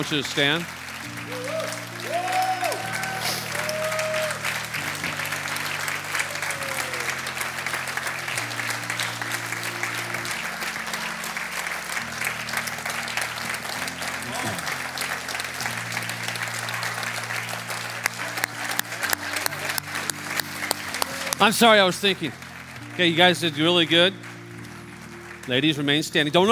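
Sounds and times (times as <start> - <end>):
speech: 0.0 - 1.5, 21.4 - 22.4, 23.0 - 24.3, 25.5 - 26.5
large crowd applauding loudly: 0.0 - 26.5
soft keyboard chords: 0.0 - 26.5.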